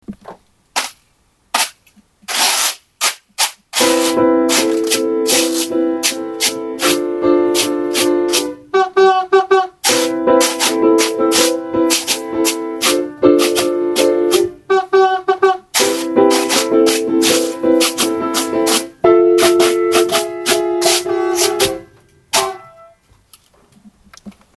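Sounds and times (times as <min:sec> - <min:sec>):
guiro: 0:03.8 - 0:23.0.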